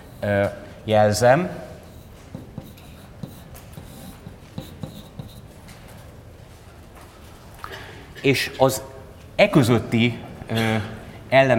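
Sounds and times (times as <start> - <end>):
speech: 0.2 - 1.7, 8.2 - 11.5
hand drawing a circuit diagram with scratching strokes: 1.8 - 5.6
sharp taps while drawing a circuit diagram by hand: 2.3 - 5.5.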